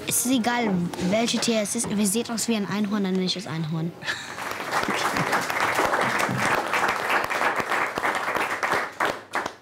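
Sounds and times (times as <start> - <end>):
speech: 0.1 - 4.4
studio audience applause: 4.3 - 9.6.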